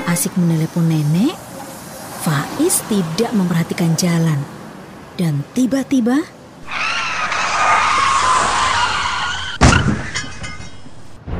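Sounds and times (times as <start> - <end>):
speech: 0.2 - 1.5, 2.2 - 6.8
motorcycle tire screech skidding to a stop: 6.6 - 10.8
sharp crash of a motorcycle rider falling: 6.7 - 11.2.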